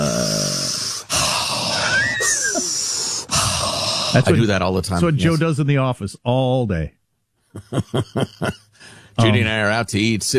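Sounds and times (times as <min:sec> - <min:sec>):
loud deep breathing: 0:00.0 - 0:04.3, 0:08.7 - 0:09.2
laughter: 0:01.8 - 0:02.8, 0:07.6 - 0:08.7
speech: 0:04.2 - 0:07.0, 0:07.6 - 0:10.3.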